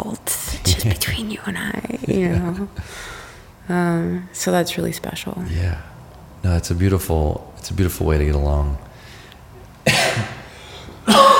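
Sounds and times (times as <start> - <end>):
speech: 0.8 - 3.1, 3.7 - 8.9
person coughing: 9.9 - 11.3.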